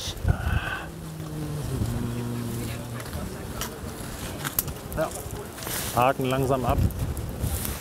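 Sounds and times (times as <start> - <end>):
strong gusty wind buffeting the microphone during a crane lift: 0.0 - 7.7
droning mechanical hum during a crane lift: 0.2 - 4.7
speech: 5.0 - 5.2, 6.0 - 7.1.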